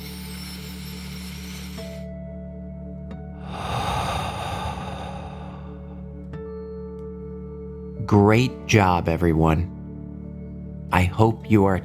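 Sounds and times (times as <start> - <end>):
deep breath in and out during a children's bedtime relaxation exercise: 3.3 - 6.3
steady soft tonal background: 3.4 - 6.4
speech: 8.1 - 9.8, 10.9 - 11.8.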